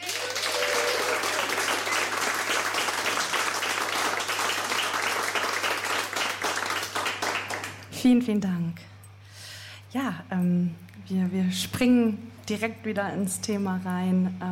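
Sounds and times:
audience applause: 0.0s - 7.9s
speech: 8.0s - 8.9s, 10.0s - 14.4s.

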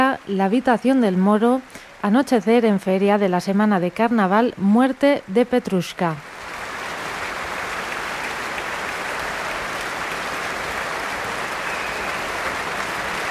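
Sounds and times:
speech: 0.2s - 6.3s
large concert audience applause after orchestral performance: 6.2s - 13.2s.

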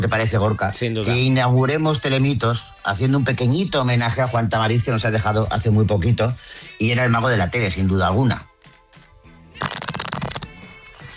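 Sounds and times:
speech: 0.0s - 8.5s
deck of playing cards being shuffled: 9.6s - 11.1s.

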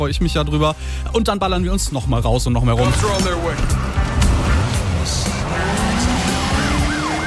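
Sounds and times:
speech: 0.0s - 4.0s
car engines roaring and revving in a video game trailer: 2.8s - 7.2s
wailing siren in a video game trailer: 5.6s - 7.2s.

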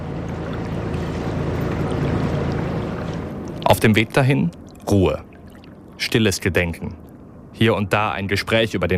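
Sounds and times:
rushing river water: 0.0s - 6.4s
boat engine rumbling on a river: 0.0s - 8.9s
speech: 3.7s - 5.3s, 6.0s - 7.0s, 7.6s - 8.9s.

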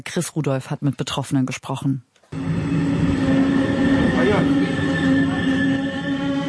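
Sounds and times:
speech: 0.0s - 2.6s
regional express train rumbling into a station: 2.4s - 6.4s
train wheels squealing: 2.4s - 6.4s.

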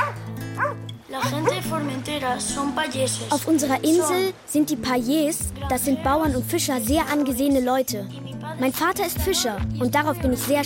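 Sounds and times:
farm guard dogs barking and yipping on an island: 0.0s - 1.7s
speech: 1.1s - 10.6s.

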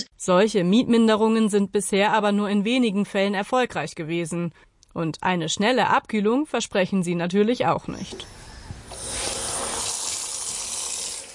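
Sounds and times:
speech: 0.2s - 8.4s
running water from a shower: 8.9s - 11.3s.

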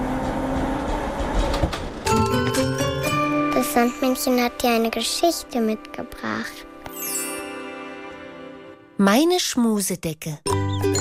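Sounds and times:
tram rumbling along rails: 0.0s - 3.1s
speech: 3.8s - 6.7s, 9.0s - 10.6s.

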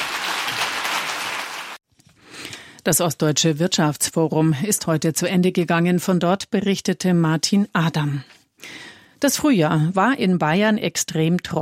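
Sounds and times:
audience applause at an East German economic forum: 0.0s - 1.8s
speech: 2.8s - 11.5s.

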